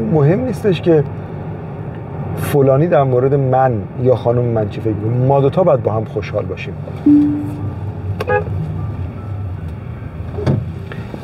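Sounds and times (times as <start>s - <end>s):
steady low rumble of road and engine noise: 0.0s - 11.2s
speech: 0.1s - 1.3s, 2.4s - 7.6s
short car horn toot: 7.1s - 8.5s.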